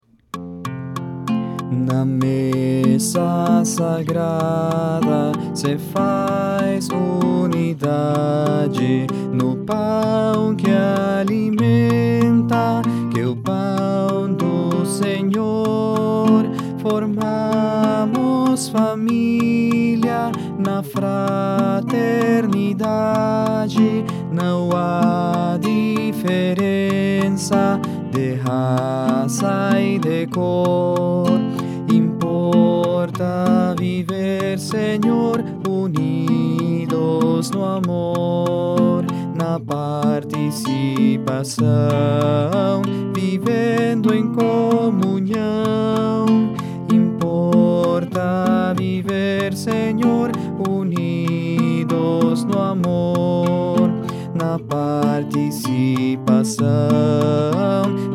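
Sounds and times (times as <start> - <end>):
baritone singing: 0.7 - 58.1.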